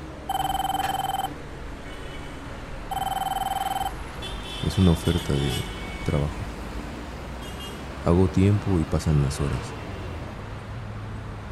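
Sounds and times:
mobile phone ringing with rapid pulsing electronic trills: 0.3 - 1.3, 2.9 - 4.0
speech: 4.7 - 6.5, 8.0 - 9.8.

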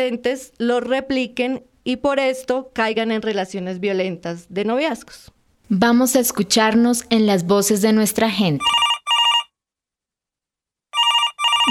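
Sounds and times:
speech: 0.0 - 8.9
telephone ringing with an incoming call in bright buzzing electronic bursts: 8.6 - 9.5, 11.0 - 11.6.

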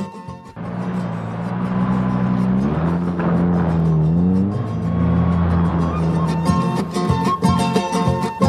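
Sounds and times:
rattles and knocks of a car on a rough road: 0.6 - 6.2
car engine drone driving from Ayaviri toward Tinajani: 0.6 - 8.3.

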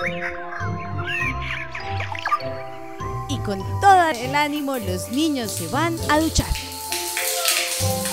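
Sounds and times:
small birds chirping and twittering: 0.0 - 4.7
speech: 3.4 - 6.7, 7.8 - 8.0.

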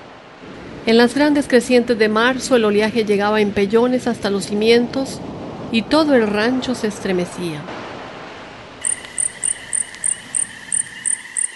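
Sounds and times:
faint hiss: 0.0 - 11.5
speech: 0.4 - 7.8
cricket chirping at night: 8.8 - 11.5.

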